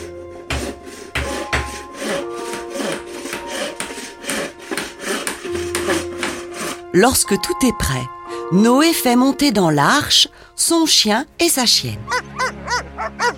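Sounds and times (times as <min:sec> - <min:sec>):
hand saw cutting wooden planks for building a boat: 0:00.0 - 0:07.2
speech: 0:07.0 - 0:12.6.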